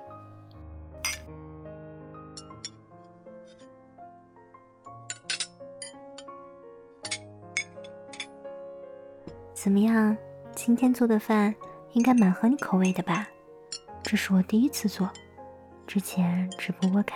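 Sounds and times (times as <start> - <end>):
soft sustained melodic music bed: 0.0 - 17.1
glasses clinking in a toast: 5.1 - 6.0, 7.0 - 8.3, 12.0 - 14.2, 16.5 - 17.0
speech: 9.6 - 13.3, 14.0 - 15.2, 15.9 - 17.1.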